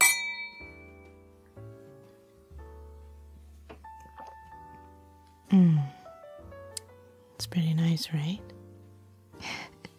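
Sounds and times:
glasses clinking in a toast: 0.0s - 0.9s
speech: 5.5s - 5.9s, 7.4s - 8.5s.

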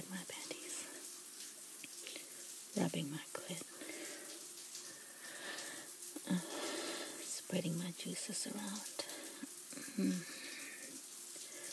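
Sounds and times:
shower water running: 0.0s - 11.7s
speech: 2.8s - 3.8s, 7.5s - 9.0s, 10.0s - 10.4s.

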